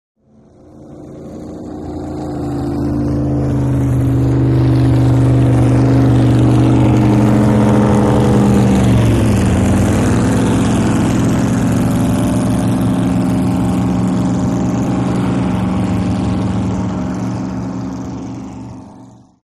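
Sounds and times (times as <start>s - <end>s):
drag boat passing slowly: 0.2s - 19.4s.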